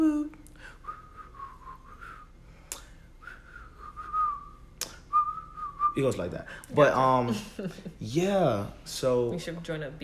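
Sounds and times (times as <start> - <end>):
person whistling a bouncy pop song melody: 0.6 - 2.3, 3.2 - 6.1
sharp finger-snap-like clicks: 2.7 - 2.9, 4.8 - 5.0
speech: 6.0 - 10.0.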